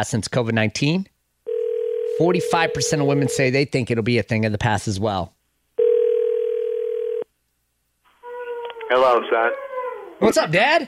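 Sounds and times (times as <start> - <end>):
speech: 0.0 - 1.1, 2.2 - 5.4, 8.9 - 9.6, 10.2 - 10.8
telephone ringback tone while calling a parent: 1.5 - 3.4, 5.8 - 7.2.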